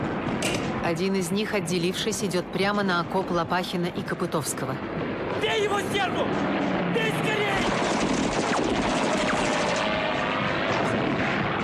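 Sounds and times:
aircraft engine roaring in a diving strafing run: 0.0 - 11.6
speech: 0.9 - 7.8
rapid bursts of aircraft cannon fire: 5.0 - 11.6.

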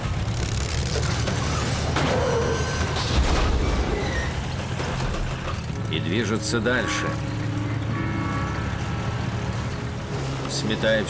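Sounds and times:
creaking, grinding metal of a crushed truck: 0.0 - 11.0
heavy tracked tank crushing a truck: 0.1 - 7.0
speech: 6.1 - 7.3, 10.6 - 11.0.

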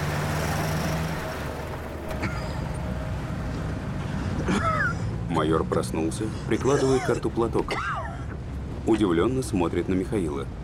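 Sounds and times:
car engine drone on a forest road: 0.0 - 7.1
rough road noise: 0.0 - 10.6
speech: 5.4 - 8.0, 8.8 - 10.6.

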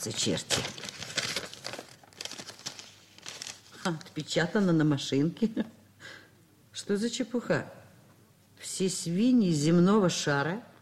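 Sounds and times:
speech: 0.0 - 0.9, 3.9 - 5.8, 6.8 - 7.8, 8.7 - 10.7
paper envelope holding a letter being opened: 0.0 - 4.1
paper crinkling and rustling: 0.0 - 4.2.

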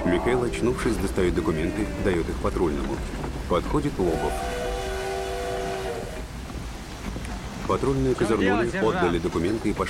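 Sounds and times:
departing train rumbling: 0.0 - 9.8
speech: 0.1 - 4.6, 7.7 - 9.8
departing train sounding a horn-like chord: 4.0 - 6.3.

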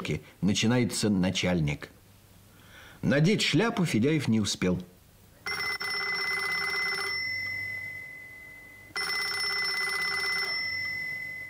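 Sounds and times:
speech: 0.1 - 2.0, 3.0 - 4.9
telephone ringing with long buzzing rings: 5.4 - 11.4.

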